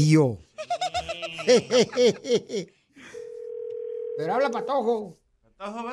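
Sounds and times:
speech: 0.0s - 0.4s, 1.4s - 2.8s, 4.2s - 5.9s
laughter: 0.6s - 2.7s
ringback tone of an outgoing telephone call: 3.2s - 4.4s.

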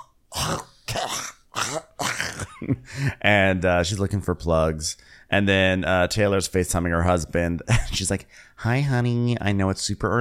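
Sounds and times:
person coughing harshly: 0.0s - 3.2s
speech: 2.7s - 10.1s.

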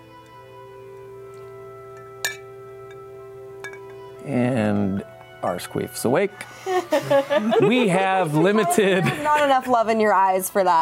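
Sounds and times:
glasses clinking in a toast: 1.4s - 4.2s
speech: 4.2s - 10.7s
laughter: 6.5s - 9.7s.

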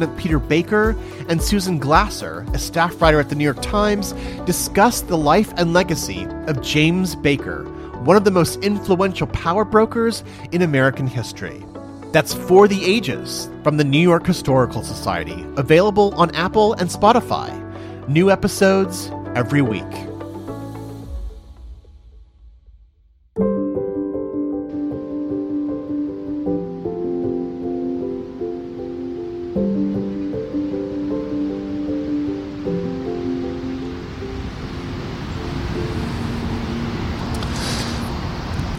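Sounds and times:
speech: 0.0s - 20.1s
melodic instrumental music: 0.0s - 22.0s, 23.4s - 38.7s
water gushing over a dam spillway at Croton Gorge Park: 31.6s - 38.7s.

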